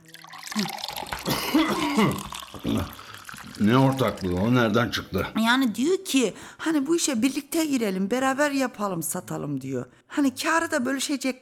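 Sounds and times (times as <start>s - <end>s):
water poured into a glass for someone: 0.0s - 5.1s
speech: 0.6s - 0.8s, 2.0s - 3.0s, 3.6s - 11.4s.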